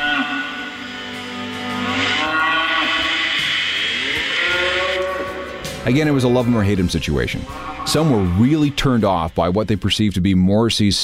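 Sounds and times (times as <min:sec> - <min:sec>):
cattle mooing as they are led to a slaughterhouse: 0:00.0 - 0:08.4
steady low rumble: 0:05.4 - 0:10.2
speech: 0:05.8 - 0:11.0.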